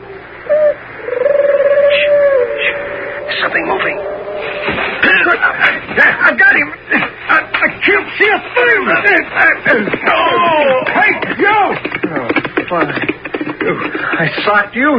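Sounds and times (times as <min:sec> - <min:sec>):
low hollow owl-like hooting calls: 0:00.0 - 0:05.0
voices: 0:00.0 - 0:14.9
scuffling noises: 0:04.4 - 0:14.9
speech: 0:07.9 - 0:11.8, 0:12.7 - 0:13.1, 0:13.7 - 0:14.9.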